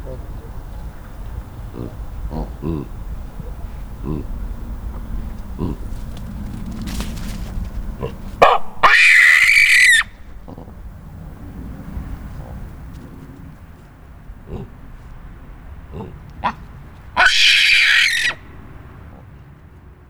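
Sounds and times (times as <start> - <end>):
gelada baboon shrieking at Nyíregyháza zoo: 0.0 - 6.0, 8.0 - 10.9, 16.0 - 18.8.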